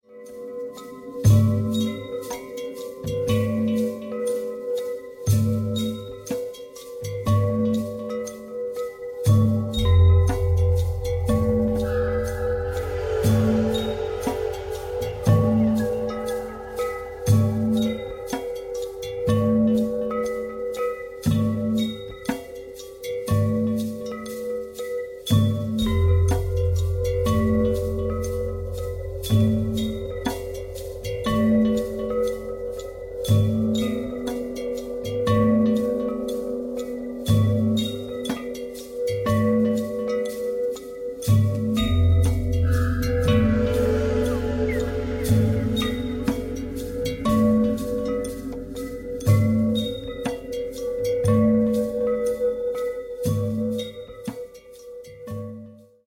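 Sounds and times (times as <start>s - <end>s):
wind chime: 0.0s - 56.0s.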